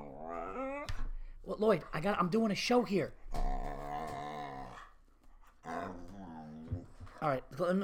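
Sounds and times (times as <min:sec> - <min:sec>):
dog growling: 0:00.0 - 0:01.0, 0:03.3 - 0:05.0, 0:05.6 - 0:07.2
speech: 0:01.5 - 0:03.2, 0:07.2 - 0:07.8.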